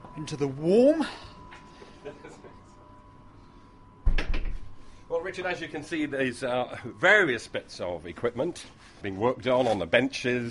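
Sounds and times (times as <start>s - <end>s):
steady mechanical hum in a workshop: 0.0s - 10.5s
speech: 0.2s - 1.3s, 5.2s - 10.5s.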